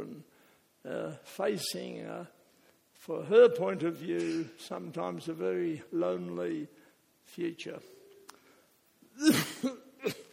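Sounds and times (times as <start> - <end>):
speech: 0.9 - 2.4, 3.0 - 8.0, 9.2 - 10.2
person coughing harshly: 4.2 - 4.6, 9.2 - 10.3.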